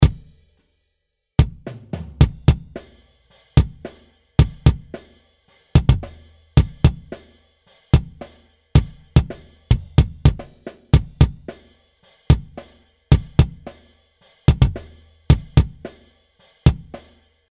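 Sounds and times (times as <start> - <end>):
ungated bass drum: 0.0 - 0.5, 1.4 - 7.3, 8.0 - 11.7, 12.3 - 13.8, 14.5 - 16.1, 16.7 - 17.1.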